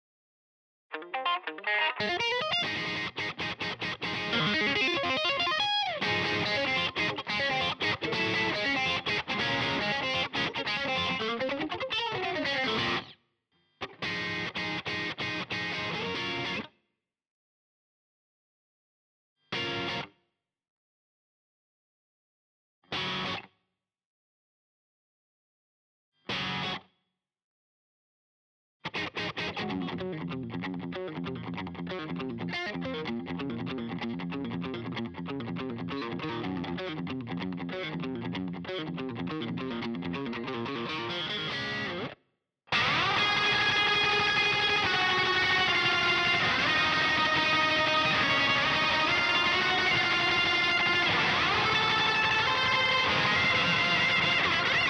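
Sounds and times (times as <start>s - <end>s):
lead electric guitar stem: 0.9s - 13.1s, 13.8s - 16.7s, 19.5s - 20.1s, 22.9s - 23.4s, 26.3s - 26.8s, 28.9s - 54.8s.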